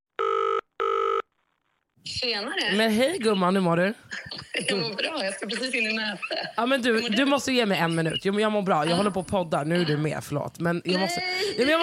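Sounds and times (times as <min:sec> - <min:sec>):
electronic phone ring tones on an outgoing call: 0:00.2 - 0:01.3
speech: 0:02.0 - 0:11.8
laughter: 0:04.1 - 0:08.2.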